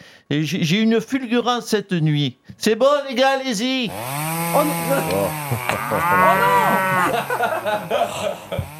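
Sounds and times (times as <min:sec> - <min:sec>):
speech: 0:00.3 - 0:08.7
laughter: 0:04.6 - 0:08.7
cow mooing: 0:04.9 - 0:07.4.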